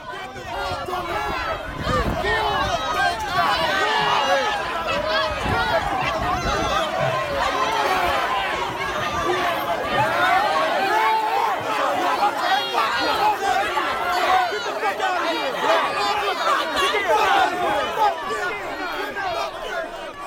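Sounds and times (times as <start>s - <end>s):
protest crowd shouting and clamoring in Charleston South Carolina: 0.0s - 20.2s.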